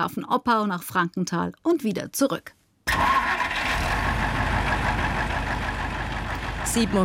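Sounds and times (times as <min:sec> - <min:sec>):
speech: 0:00.0 - 0:03.0, 0:06.8 - 0:07.0
city bus engine idling at a stop: 0:03.6 - 0:07.0.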